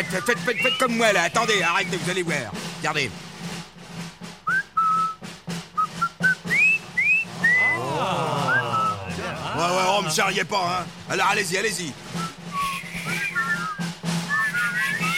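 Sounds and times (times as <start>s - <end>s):
person whistling a tune: 0.0s - 2.0s, 4.4s - 9.2s, 12.1s - 15.1s
speech: 0.0s - 3.3s, 10.0s - 12.1s
steady rhythmic tapping: 0.0s - 15.1s
laughter: 7.3s - 10.5s.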